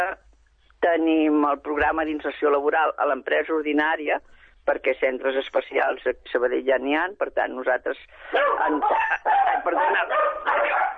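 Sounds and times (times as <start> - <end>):
speech: 0.8 - 10.9
dogs barking: 8.4 - 10.9.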